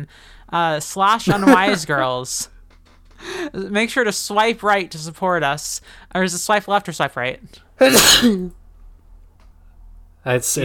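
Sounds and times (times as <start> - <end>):
speech: 0.0 - 2.5, 3.2 - 8.6, 10.2 - 10.6
person sneezing: 1.3 - 1.8, 7.8 - 8.5.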